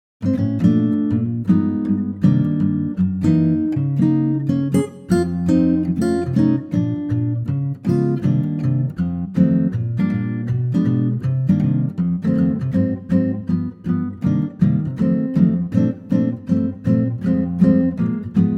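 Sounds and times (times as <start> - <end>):
acoustic guitar in B flat: 0.2 - 18.5.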